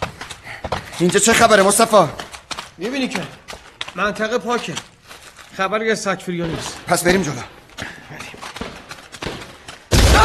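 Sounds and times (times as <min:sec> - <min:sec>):
rustling: 0:00.0 - 0:09.9
speech: 0:01.0 - 0:02.2, 0:02.8 - 0:03.4, 0:04.0 - 0:04.9, 0:05.5 - 0:07.6
booby-trap explosion during combat: 0:09.9 - 0:10.2.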